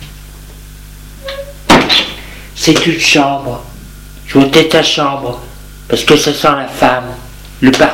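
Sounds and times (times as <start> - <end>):
door swinging open with a short high creak: 1.2 - 2.2
speech: 2.6 - 3.7, 4.3 - 7.9.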